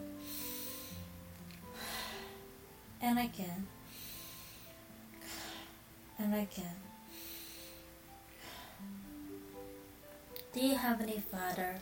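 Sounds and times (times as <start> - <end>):
heavy breathing into microphone: 0.0 - 2.5, 3.8 - 5.9, 7.0 - 9.0
speech: 3.0 - 3.8, 6.2 - 6.9, 10.6 - 11.8.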